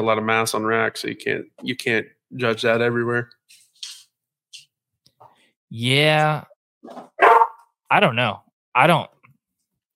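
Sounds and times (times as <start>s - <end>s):
speech: 0.0s - 3.4s, 5.7s - 7.3s, 7.9s - 9.2s
dog barking: 7.1s - 7.6s.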